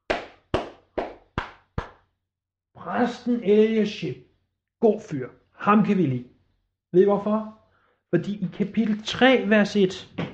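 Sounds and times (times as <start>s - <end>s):
people clapping together: 0.0s - 2.0s
speech: 2.8s - 6.3s, 6.9s - 10.3s.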